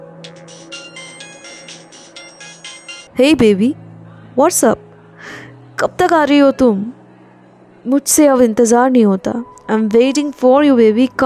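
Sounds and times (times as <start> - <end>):
mobile phone ringtone with bright electronic melody: 0.4 - 3.1
speech: 3.2 - 3.8, 4.4 - 4.8, 5.8 - 7.0, 7.8 - 11.2.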